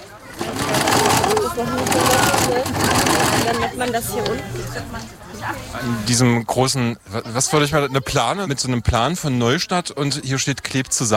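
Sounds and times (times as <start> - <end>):
sewing machines whirring with stitching rattle: 0.0 - 4.2
voices chattering: 0.0 - 11.1
speech: 3.8 - 11.1.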